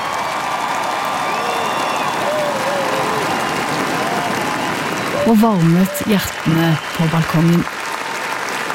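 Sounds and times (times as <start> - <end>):
scattered shouts in a crowd: 0.0 - 7.2
large outdoor crowd applauding: 0.0 - 8.7
crowd whistles: 1.2 - 2.6, 4.2 - 5.4
speech: 5.3 - 7.8.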